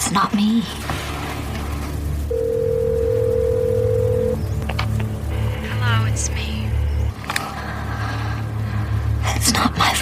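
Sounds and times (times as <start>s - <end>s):
low hum: 0.0s - 9.9s
speech: 0.1s - 1.0s, 6.2s - 6.6s
telephone ringing tone before answering machine: 2.3s - 4.4s.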